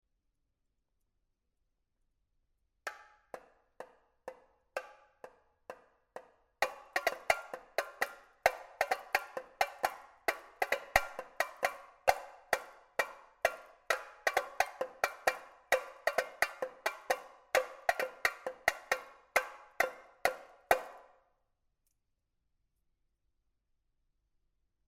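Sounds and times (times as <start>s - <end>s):
tambourim playing a marcha: 6.6s - 21.0s.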